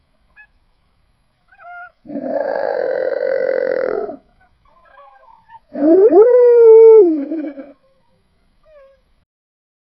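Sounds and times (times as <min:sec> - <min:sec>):
wolf howling: 0:01.6 - 0:08.0.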